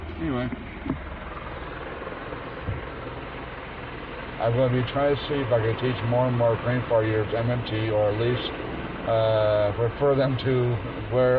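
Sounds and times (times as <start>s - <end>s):
helicopter passing over a home near a hospital: 0.0s - 11.3s
speech: 0.2s - 1.1s, 4.4s - 11.3s.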